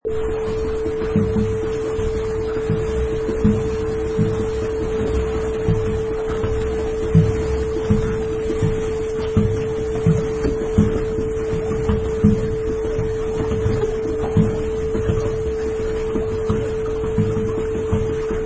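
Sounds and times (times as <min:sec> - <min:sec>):
paddle boat: 0:00.1 - 0:18.4.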